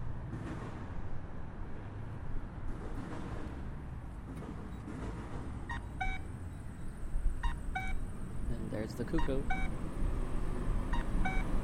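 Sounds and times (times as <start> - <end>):
street traffic rumble: 0.0 - 11.6
pedestrian crossing signal electronic chirps: 5.7 - 8.1, 9.1 - 9.8, 10.9 - 11.6
speech: 9.0 - 9.9.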